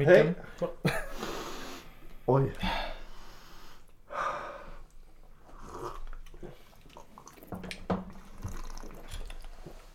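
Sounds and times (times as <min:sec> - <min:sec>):
speech: 0:00.0 - 0:01.0, 0:02.3 - 0:02.8
person sipping a Campari drink: 0:05.4 - 0:09.9
soft glass and liquid noises: 0:06.0 - 0:09.9.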